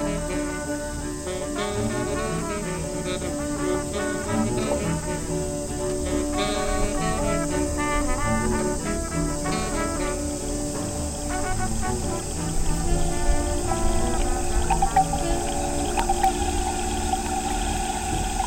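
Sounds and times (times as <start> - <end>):
pond watery wash: 0.0 - 18.4
dense insect-like chirping at a pond: 0.1 - 18.4.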